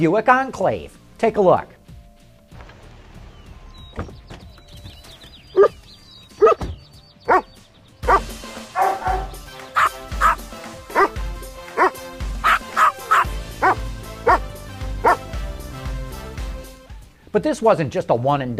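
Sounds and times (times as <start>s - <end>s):
speech: 0.0s - 1.8s, 17.4s - 18.5s
several dogs woofing and barking: 6.4s - 6.6s, 7.3s - 15.3s.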